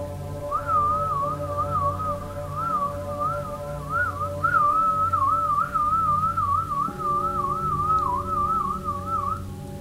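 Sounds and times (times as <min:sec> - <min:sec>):
person whistling a long wavering note: 0:00.5 - 0:09.4.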